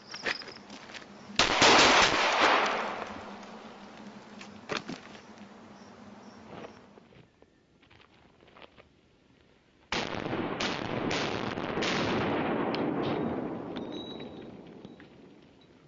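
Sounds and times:
live-fire gunshots: 0:01.4 - 0:03.2, 0:09.9 - 0:14.4.

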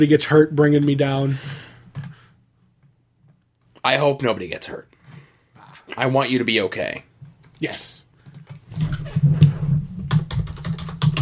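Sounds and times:
speech: 0:00.0 - 0:01.7, 0:03.8 - 0:04.9, 0:05.9 - 0:08.0
rapid irregular clicking of computer keyboard keys: 0:01.9 - 0:02.2, 0:08.2 - 0:11.2.

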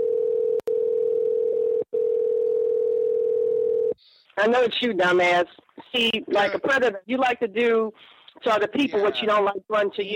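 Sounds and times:
telephone dial tone of an outgoing call-back: 0:00.0 - 0:04.0
speech: 0:04.4 - 0:10.1.

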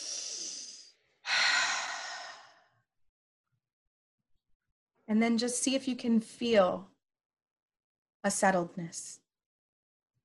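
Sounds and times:
deep breath during a guided seated shoulder-and-hip twist exercise: 0:00.0 - 0:02.8
speech: 0:05.1 - 0:06.9, 0:08.2 - 0:09.2.

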